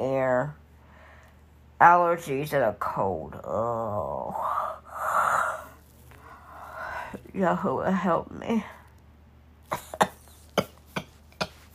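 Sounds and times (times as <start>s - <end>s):
speech: 0.4s - 0.6s, 1.8s - 4.6s, 7.4s - 8.8s
short sharp coughs: 9.7s - 11.7s.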